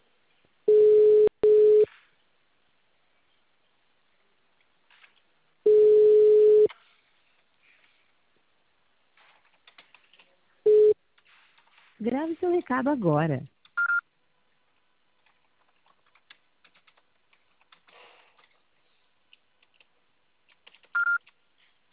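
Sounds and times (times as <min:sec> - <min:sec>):
telephone ringing tone on an outgoing call: 0:00.7 - 0:01.9, 0:05.7 - 0:06.7, 0:10.7 - 0:11.0
speech: 0:12.0 - 0:13.5.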